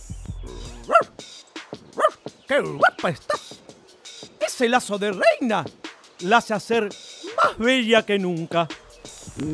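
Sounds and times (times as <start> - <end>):
dog barking: 0.7 - 1.2, 2.0 - 2.2, 2.8 - 3.5, 7.3 - 7.6
speech: 2.5 - 3.5, 4.5 - 8.8, 9.4 - 9.5.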